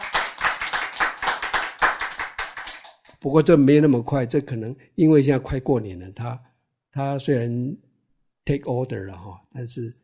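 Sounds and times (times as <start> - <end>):
audience clapping hands in a brisk rhythm: 0.0 - 3.2
speech: 3.2 - 7.9, 8.5 - 10.0.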